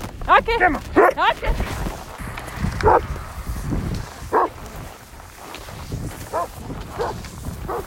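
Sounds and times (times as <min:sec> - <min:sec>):
faint rustling and shuffling movement: 0:00.0 - 0:07.8
steady outdoor rumble: 0:00.0 - 0:07.8
speech: 0:00.4 - 0:01.8, 0:07.0 - 0:07.8
dog barking before pulling a cross-country skier: 0:00.9 - 0:01.2, 0:02.8 - 0:03.0, 0:04.3 - 0:04.5, 0:06.3 - 0:07.8.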